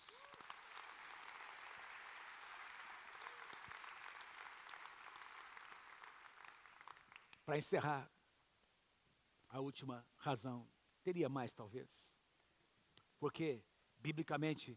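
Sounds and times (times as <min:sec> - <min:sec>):
audience applauding: 0:00.0 - 0:07.5
speech: 0:07.5 - 0:08.1, 0:09.5 - 0:12.2, 0:13.2 - 0:14.7.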